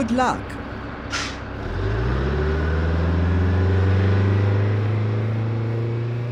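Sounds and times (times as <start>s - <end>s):
speech: 0.0s - 1.2s
heavy bus engine rumbling while driving: 0.0s - 6.3s
air brake releasing: 1.1s - 1.5s.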